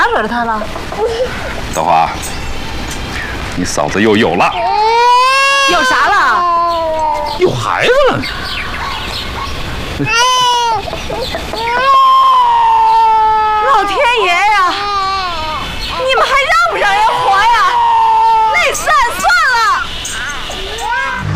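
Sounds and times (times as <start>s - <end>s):
adults talking soothingly: 0.0s - 11.9s, 13.6s - 21.2s
baby crying in a drama scene: 4.5s - 7.4s, 10.0s - 15.7s, 16.8s - 19.2s, 20.6s - 21.2s.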